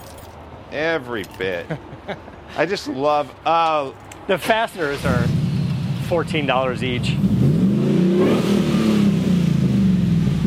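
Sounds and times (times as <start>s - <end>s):
speech: 0.7s - 5.4s, 6.1s - 7.5s
car engine revving through short stainless exhaust: 4.8s - 10.4s.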